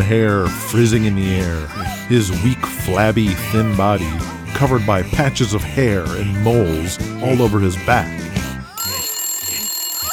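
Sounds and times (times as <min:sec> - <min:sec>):
speech: 0:00.0 - 0:08.4
telephone ringing with bright electronic tone: 0:08.7 - 0:10.1.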